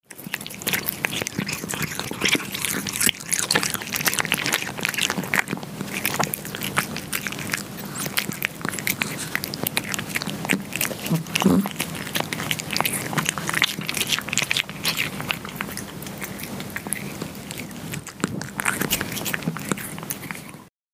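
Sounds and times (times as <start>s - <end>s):
cat eating food: 0.0s - 20.7s.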